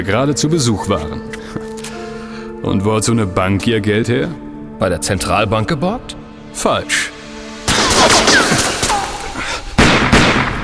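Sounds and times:
speech: 0.0 - 1.6, 2.6 - 7.2
rapid bursts of gunfire: 7.7 - 9.0, 9.8 - 10.6.

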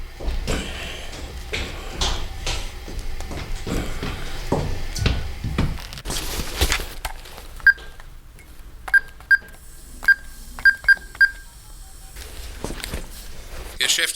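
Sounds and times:
rustling and shuffling movement: 0.0 - 9.6, 12.1 - 13.8
mobile phone keypad dialing tones: 8.9 - 11.5.

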